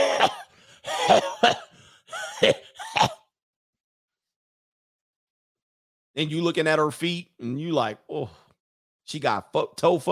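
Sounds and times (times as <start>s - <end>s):
raspy strained vocal sounds: 0.0s - 3.2s
person imitating a coughing fit: 0.0s - 3.3s
speech: 1.1s - 1.6s, 6.2s - 8.4s, 9.1s - 10.0s.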